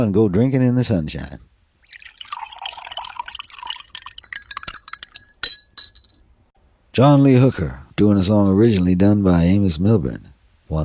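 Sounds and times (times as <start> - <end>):
speech: 0.0 - 1.5, 7.0 - 10.8
Coca-Cola pouring into a tall glass: 1.8 - 5.5
ice cubes clinking against a tall glass: 1.8 - 6.2.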